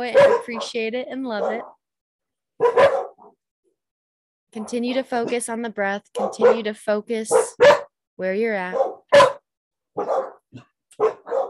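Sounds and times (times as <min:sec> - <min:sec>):
dog barking: 0:00.0 - 0:01.8, 0:02.6 - 0:03.4, 0:06.2 - 0:06.7, 0:07.3 - 0:07.9, 0:08.7 - 0:10.4, 0:11.0 - 0:11.4
speech: 0:00.0 - 0:01.8, 0:02.6 - 0:03.0, 0:04.5 - 0:08.9
dog yelping: 0:00.1 - 0:00.7, 0:01.4 - 0:01.7, 0:02.6 - 0:03.3, 0:06.2 - 0:06.6, 0:07.3 - 0:07.9, 0:08.7 - 0:09.4, 0:10.0 - 0:10.4, 0:11.0 - 0:11.4.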